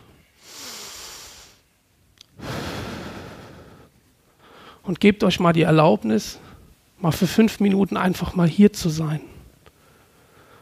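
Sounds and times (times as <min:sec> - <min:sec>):
slow deep breathing in and out during a guided relaxation exercise: 0:00.0 - 0:01.7, 0:02.4 - 0:04.8, 0:09.8 - 0:10.6
speech: 0:04.9 - 0:09.3.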